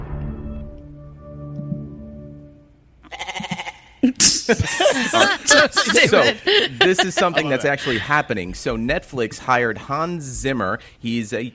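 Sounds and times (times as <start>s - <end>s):
goat bleating: 3.0s - 4.0s
laughter: 4.0s - 8.5s
speech: 4.0s - 11.5s.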